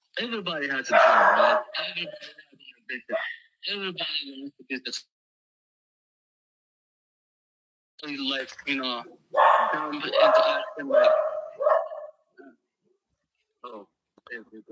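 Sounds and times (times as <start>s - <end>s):
speech: 0.2s - 5.1s, 8.0s - 11.3s, 13.6s - 14.7s
dog barking and yipping excitedly: 0.9s - 2.3s, 9.3s - 12.2s.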